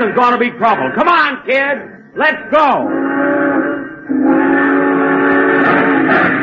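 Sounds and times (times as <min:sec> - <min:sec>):
speech: 0:00.0 - 0:03.3, 0:04.1 - 0:04.9
passenger train whistle blowing: 0:02.9 - 0:06.3.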